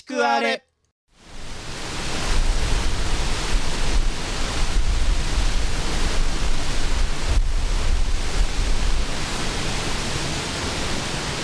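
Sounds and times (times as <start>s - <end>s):
speech: 0.1s - 0.7s
large waterfall with a 133-metre drop roaring: 1.2s - 11.4s.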